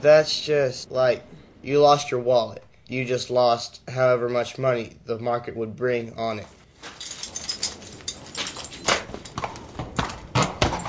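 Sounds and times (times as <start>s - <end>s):
speech: 0.0s - 6.6s
horse hooves clip-clopping at a walk while being ridden: 6.8s - 10.8s.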